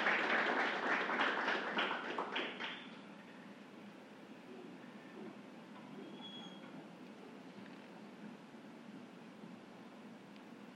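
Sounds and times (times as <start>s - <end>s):
crowd applauding a man receiving a tribute: 0.0s - 2.9s.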